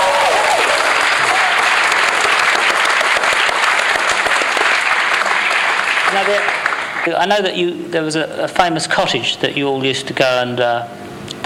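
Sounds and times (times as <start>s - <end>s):
crowd applauding: 0.0s - 7.2s
speech: 6.2s - 11.0s.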